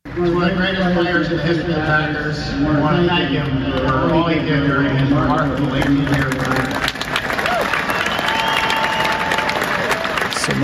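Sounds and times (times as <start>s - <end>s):
speech: 0.2s - 6.8s
polite applause from an audience: 5.3s - 10.6s.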